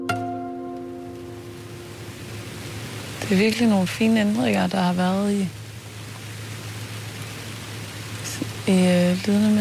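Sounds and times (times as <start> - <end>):
steady rain falling: 0.1 - 9.6
low hum: 0.9 - 9.6
speech: 3.3 - 5.6, 8.7 - 9.6.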